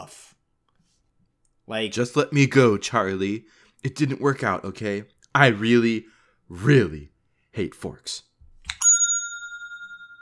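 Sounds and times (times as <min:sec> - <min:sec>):
speech: 0:01.7 - 0:08.3
small bell ringing: 0:08.8 - 0:10.2.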